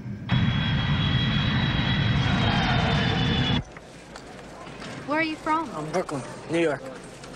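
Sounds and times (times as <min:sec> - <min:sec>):
airplane engine drone inside the cabin of a plane due to land in Adelaide: 0:00.0 - 0:03.7
speech: 0:05.2 - 0:06.9.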